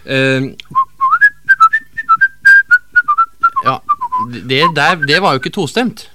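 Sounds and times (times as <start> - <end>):
speech: 0.0 - 0.7, 3.6 - 6.1
person whistling a hen-calling tune: 0.7 - 5.5.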